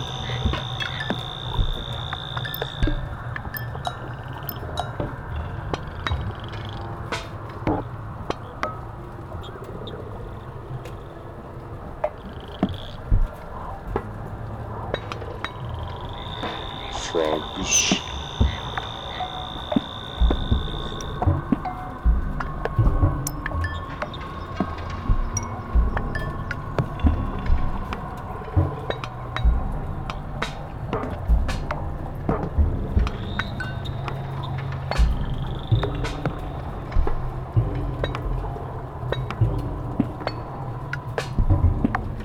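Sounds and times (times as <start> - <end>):
high insect-like trill: 0.0 - 4.9, 15.5 - 26.8
low continuous drone: 0.0 - 42.2
night chorus of frogs croaking outdoors: 0.0 - 42.2.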